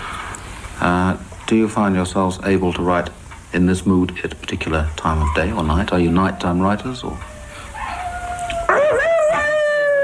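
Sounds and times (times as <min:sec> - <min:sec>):
speech: 0:01.5 - 0:07.3
seven-week-old puppy howling: 0:05.2 - 0:10.0.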